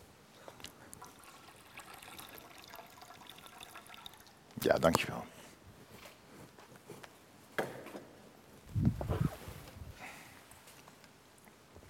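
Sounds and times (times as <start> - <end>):
child pouring water into a baptismal font during a baptism: 1.0 - 4.4
speech: 4.6 - 5.4.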